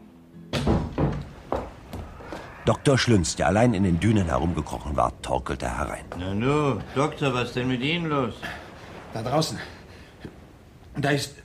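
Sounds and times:
heavy wooden thunks of a door flying open behind a porch: 0.6s - 2.1s
speech: 2.7s - 9.8s, 11.0s - 11.4s.

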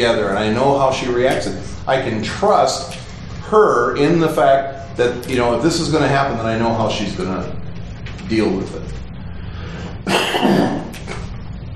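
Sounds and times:
speech: 0.0s - 7.6s, 8.3s - 9.0s
raspy catch of breath: 9.4s - 10.0s
person coughing: 10.0s - 11.2s.

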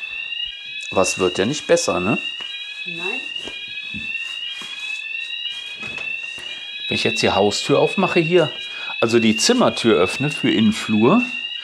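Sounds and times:
alarm ringing inside a flat: 0.0s - 11.6s
speech: 1.0s - 3.2s, 6.9s - 11.4s.

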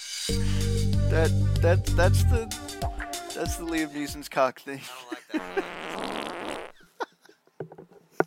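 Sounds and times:
speech: 0.3s - 0.5s, 1.1s - 6.3s
buzzy fart sound effect from a soundboard button: 5.4s - 6.7s.

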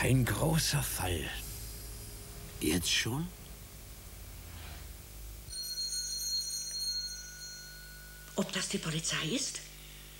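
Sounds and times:
speech: 0.0s - 1.4s, 2.6s - 3.4s, 8.4s - 9.7s
low hum: 0.0s - 10.1s
house doorbell giving a steady electric ring: 5.5s - 8.9s.

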